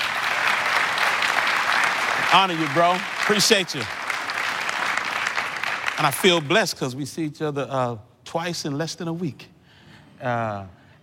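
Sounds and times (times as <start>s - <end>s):
large group applauding: 0.0s - 6.9s
speech: 2.3s - 4.0s, 6.0s - 9.5s, 10.2s - 10.8s.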